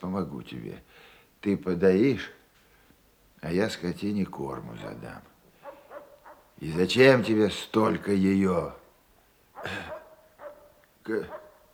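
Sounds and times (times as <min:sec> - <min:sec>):
speech: 0:00.1 - 0:02.4, 0:03.4 - 0:05.3, 0:06.6 - 0:08.8, 0:09.6 - 0:10.0, 0:11.1 - 0:11.4
dog barking: 0:05.6 - 0:07.6, 0:09.5 - 0:11.7.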